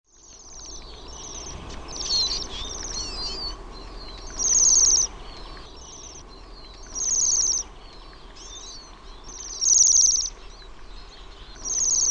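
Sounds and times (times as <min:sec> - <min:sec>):
Bohemian waxwing trilled calls: 0:00.1 - 0:12.0.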